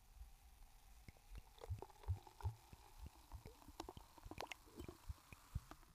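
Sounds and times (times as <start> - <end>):
sparkling grape juice pouring into a glass: 0.3 - 5.9
fizzing pops and crackles of sparkling grape juice: 0.6 - 5.9.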